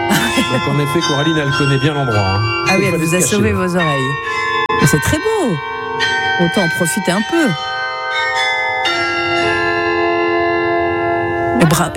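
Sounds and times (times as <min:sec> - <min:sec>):
laughter: 0:00.0 - 0:01.2
carillon bells ringing in a belfry: 0:00.0 - 0:11.9
speech: 0:00.5 - 0:05.8, 0:06.4 - 0:07.7, 0:11.6 - 0:11.9.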